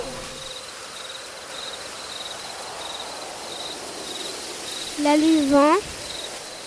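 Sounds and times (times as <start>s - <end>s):
owl calling in short high notes: 0.0s - 0.5s
soft hissy night background: 0.0s - 6.6s
speech: 5.0s - 5.9s.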